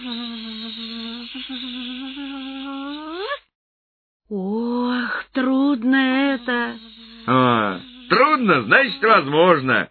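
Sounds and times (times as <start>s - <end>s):
loud insect buzzing: 0.0s - 3.4s, 5.6s - 9.8s
speech: 5.4s - 9.9s.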